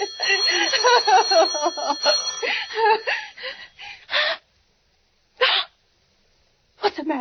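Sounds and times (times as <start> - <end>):
telephone ringing in short bright bursts: 0.0 - 3.8
faint ringing tone: 0.0 - 4.3.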